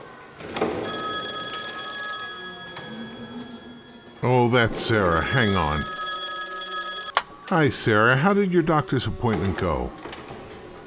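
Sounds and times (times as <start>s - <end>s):
telephone ringing with a bell-like tone: 0.8s - 7.4s
speech: 4.2s - 6.0s, 7.5s - 10.1s.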